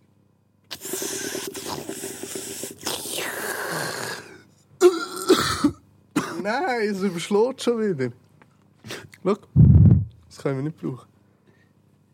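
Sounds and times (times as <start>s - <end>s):
person coughing into a microphone: 4.8s - 6.6s
speech: 6.4s - 8.2s, 9.2s - 9.6s, 10.4s - 11.1s.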